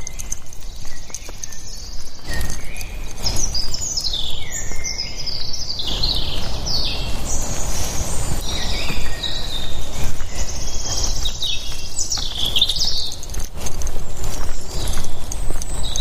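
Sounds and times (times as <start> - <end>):
many birds singing in the woods: 0.0 - 15.9
steady low rustle and rumble of movement: 0.0 - 15.9.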